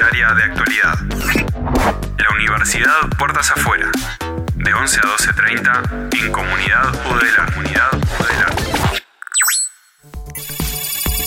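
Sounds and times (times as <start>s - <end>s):
speech: 0.2s - 8.8s
electronic telephone ringtone signalling an incoming call: 10.4s - 11.2s.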